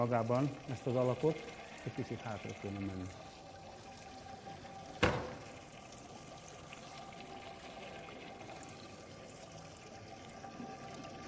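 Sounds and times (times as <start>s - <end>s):
speech: 0.0s - 3.3s
water pouring over a metal barrel to cool it: 0.0s - 8.8s
sharp knock: 5.0s - 5.4s.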